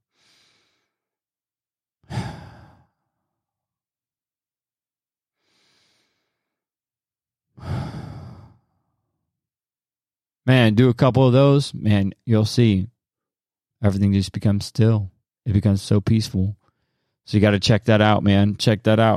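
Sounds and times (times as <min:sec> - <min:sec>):
slow deep meditation breathing: 0:00.1 - 0:01.1, 0:02.0 - 0:03.4, 0:05.4 - 0:06.6, 0:07.6 - 0:09.1
speech: 0:10.4 - 0:12.9, 0:13.8 - 0:16.6, 0:17.3 - 0:19.1.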